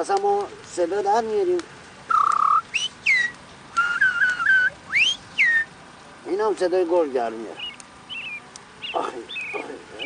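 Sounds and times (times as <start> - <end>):
speech: 0.0 - 1.8, 6.3 - 7.6
nightingale singing, possibly seeking a mate: 1.5 - 5.9, 7.4 - 10.0.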